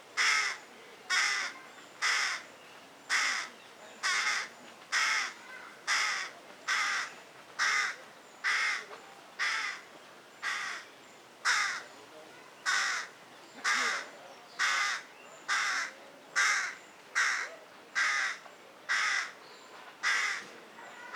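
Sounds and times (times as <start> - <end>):
carrion crow Corvus corone delivering harsh caws: 0.2 - 2.4, 3.1 - 8.8, 9.4 - 9.8, 10.4 - 10.8, 11.4 - 11.8, 12.7 - 19.4, 20.0 - 20.4.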